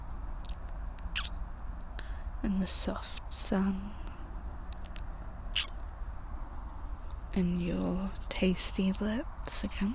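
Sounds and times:
steady low outdoor rumble: 0.0s - 9.9s
birds chirping in the woods: 1.1s - 1.4s, 5.5s - 5.9s
speech: 2.4s - 4.0s, 7.4s - 9.9s.

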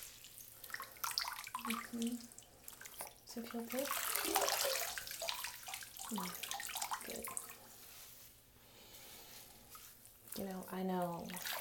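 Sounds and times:
warm water poured over shoulders in a bath: 0.0s - 8.2s, 9.6s - 11.6s
speech: 1.7s - 2.4s, 3.4s - 4.6s, 6.1s - 6.5s, 7.1s - 7.4s, 10.4s - 11.6s.

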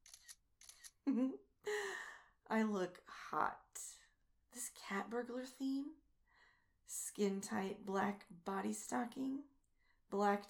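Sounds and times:
phone camera shutter clicks on a selfie stick: 0.0s - 1.0s
speech: 1.1s - 1.9s, 2.5s - 3.6s, 4.5s - 6.0s, 6.9s - 9.5s, 10.1s - 10.4s.

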